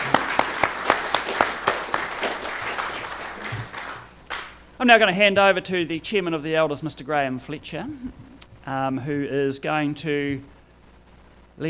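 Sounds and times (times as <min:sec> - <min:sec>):
room full of people applauding: 0:00.0 - 0:04.6
speech: 0:04.8 - 0:10.6.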